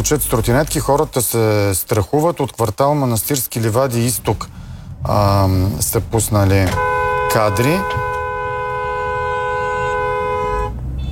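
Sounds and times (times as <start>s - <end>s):
speech: 0.0s - 8.1s
rumbling traffic noise: 0.0s - 11.0s
car horn honking by an irritated driver: 6.5s - 11.0s.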